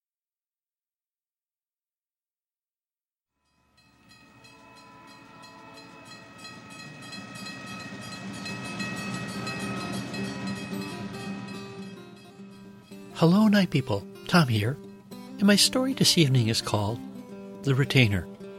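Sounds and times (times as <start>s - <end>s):
metallic whine of train on rails: 3.4s - 13.2s
rhythmic clatter of train on rails: 3.8s - 13.2s
train rumbling on rails: 3.9s - 13.3s
speech: 13.2s - 14.8s, 15.4s - 18.4s.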